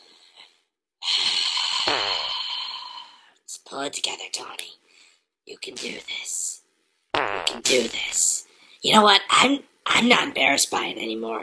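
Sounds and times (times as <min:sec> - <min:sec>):
woman doing deep breathing exercises backstage at a live show: 0:00.0 - 0:03.4, 0:04.9 - 0:05.2
speech: 0:03.8 - 0:04.8, 0:05.5 - 0:06.4, 0:07.2 - 0:11.4.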